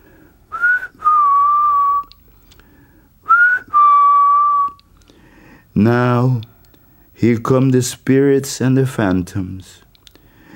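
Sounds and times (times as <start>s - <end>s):
person whistling an ancestral call: 0.5s - 2.2s, 3.3s - 4.9s
speech: 5.8s - 6.5s, 7.2s - 9.8s.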